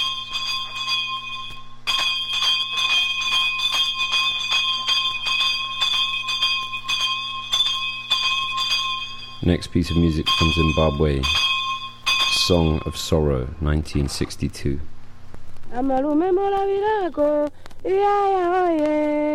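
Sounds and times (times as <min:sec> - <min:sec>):
bells ringing in Trinidad: 0:00.0 - 0:14.2
speech: 0:09.4 - 0:11.4, 0:12.5 - 0:14.9, 0:15.8 - 0:19.3.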